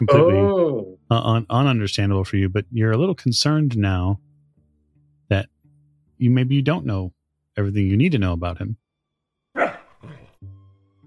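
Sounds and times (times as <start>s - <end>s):
speech: 0.0s - 4.3s, 5.3s - 5.6s, 6.2s - 8.8s
dog barking: 9.6s - 10.4s.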